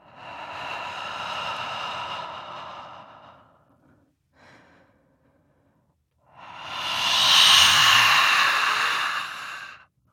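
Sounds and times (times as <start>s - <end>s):
ghost creature: 6.4s - 9.8s.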